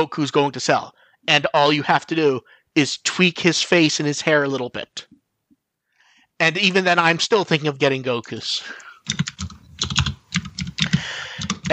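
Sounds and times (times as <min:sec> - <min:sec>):
speech: 0:00.0 - 0:05.2, 0:06.4 - 0:09.4
loud typing on a computer keyboard: 0:09.0 - 0:11.7.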